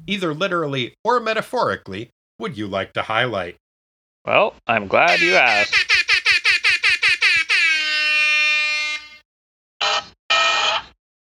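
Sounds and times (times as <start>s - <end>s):
speech: 0.1s - 3.6s, 4.2s - 6.0s
whoopee cushion air horn sound effect: 5.1s - 9.2s, 9.8s - 10.9s.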